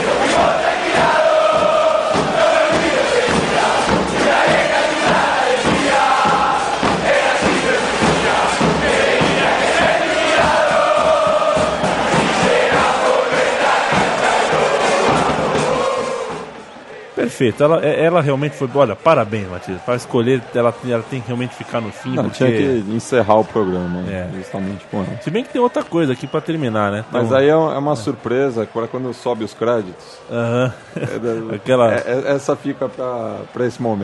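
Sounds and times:
huge crowd of football supporters chanting a stadium song: 0.0 - 17.4, 18.2 - 25.5
speech: 17.4 - 34.0
laughter: 30.3 - 31.8.

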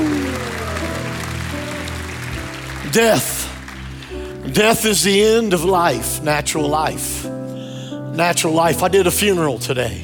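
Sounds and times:
large audience at a sermon shouting praise: 0.0 - 3.7
large audience at a sermon clapping: 0.0 - 5.2
speech: 2.9 - 3.4, 4.4 - 7.6, 8.2 - 10.0.

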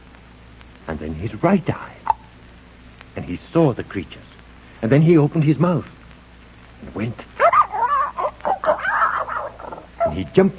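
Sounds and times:
speech: 0.9 - 2.1, 3.2 - 6.0, 6.8 - 7.3, 10.1 - 10.5
person imitating dog barking: 7.4 - 10.4.

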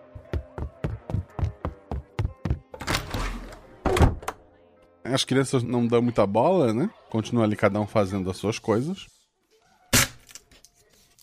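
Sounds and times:
quick footsteps of a woman leaving: 0.0 - 3.0
door closing thud: 2.8 - 4.4
speech: 5.1 - 9.2.

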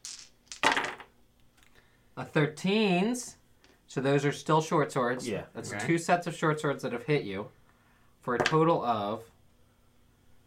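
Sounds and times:
dice clattering across a hard tabletop in a tabletop game: 0.0 - 1.2, 8.4 - 8.6
speech: 2.2 - 7.6, 8.2 - 9.3.

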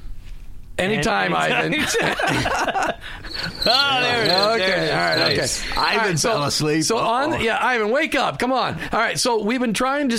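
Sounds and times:
speech: 0.8 - 10.1
chuckling-like vocal sounds: 1.4 - 7.5
cricket chirping: 1.8 - 7.5.

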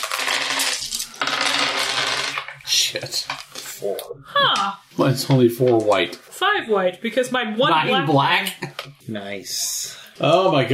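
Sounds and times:
dice rattling and clattering across a hard tabletop: 0.0 - 2.6
speech: 2.7 - 10.7.

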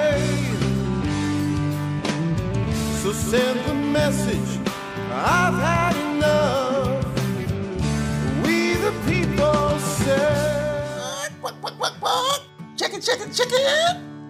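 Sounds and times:
music: 0.0 - 14.2
speech: 3.1 - 6.8, 13.0 - 14.1
chicken clucking: 11.0 - 12.4
laughter: 11.0 - 14.0.

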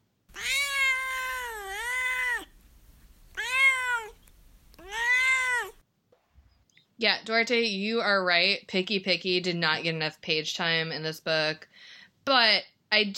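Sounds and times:
cat meowing: 0.3 - 2.5, 3.3 - 4.2, 4.8 - 5.8
speech: 7.0 - 13.1.

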